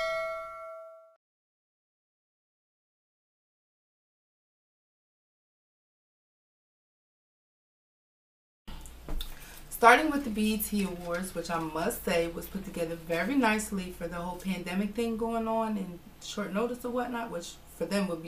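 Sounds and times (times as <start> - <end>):
bright metallic notification bell ding: 0.0 - 1.2
speech: 9.8 - 18.2.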